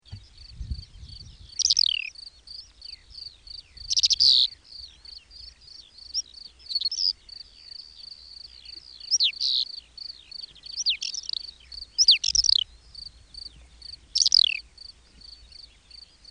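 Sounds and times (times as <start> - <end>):
grey partridge calling: 1.5 - 3.0, 3.8 - 12.8, 13.4 - 14.7.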